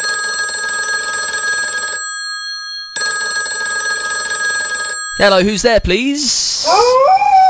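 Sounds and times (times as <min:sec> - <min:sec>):
loud telephone bell ringing with a bright metallic trill: 0:00.0 - 0:05.4
speech: 0:05.2 - 0:07.3.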